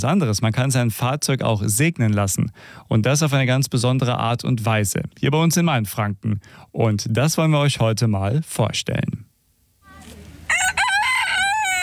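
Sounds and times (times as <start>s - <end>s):
speech: 0.0s - 9.3s
faint murmur: 9.8s - 10.5s
rooster crowing on a farm: 10.3s - 11.8s.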